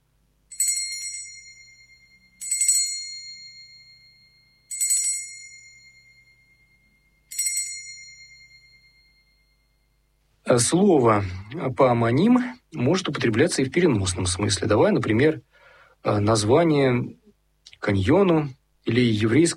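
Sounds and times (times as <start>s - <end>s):
small bell ringing: 0.5s - 10.2s
speech: 10.5s - 17.2s, 17.8s - 19.5s.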